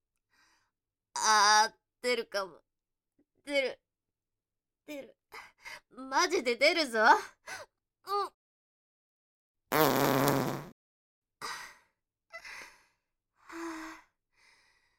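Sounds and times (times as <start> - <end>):
speech: 1.2 - 2.7, 3.4 - 3.8, 4.9 - 8.4, 9.7 - 10.4
loud buzzy fart: 9.7 - 10.8
short breathy gasps and sighs: 11.4 - 14.9.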